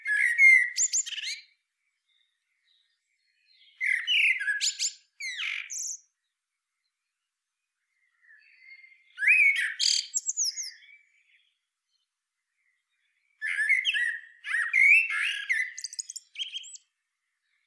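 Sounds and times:
Eurasian blackbird song: 0.0 - 17.6.

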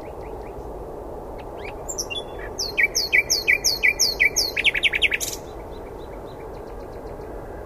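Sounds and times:
common nightingale Luscinia megarhynchos singing: 1.4 - 7.3.

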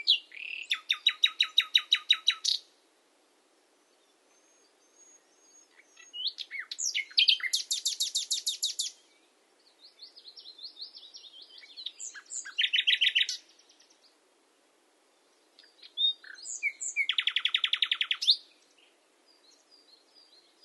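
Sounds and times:
common nightingale Luscinia megarhynchos singing: 0.0 - 2.8, 3.7 - 14.2, 15.1 - 20.6.

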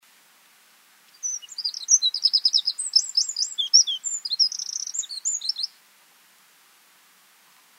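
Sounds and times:
Eurasian wren song: 1.1 - 5.8.

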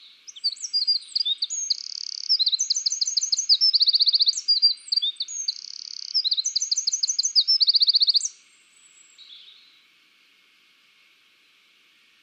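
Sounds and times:
Eurasian wren Troglodytes troglodytes singing: 0.0 - 9.8.

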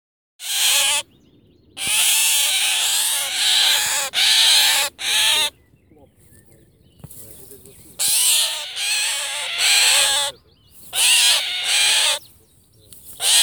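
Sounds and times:
Eurasian jay Garrulus glandarius screeching: 0.4 - 1.0, 1.8 - 5.5, 8.0 - 10.3, 11.0 - 12.2, 13.2 - 13.4.

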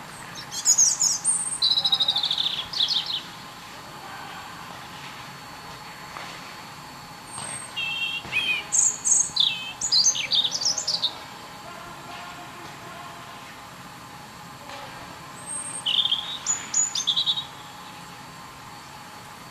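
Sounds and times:
European robin Erithacus rubecula singing: 0.3 - 3.3, 7.3 - 11.2, 15.4 - 18.0.

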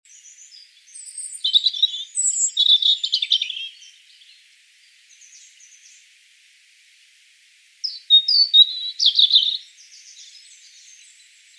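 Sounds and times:
European robin song of high thin warbling phrases: 0.1 - 4.4, 7.8 - 11.5.

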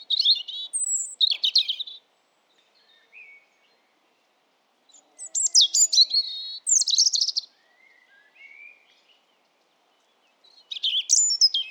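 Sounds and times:
European robin Erithacus rubecula singing: 0.0 - 2.0, 4.9 - 7.5, 10.5 - 11.6.

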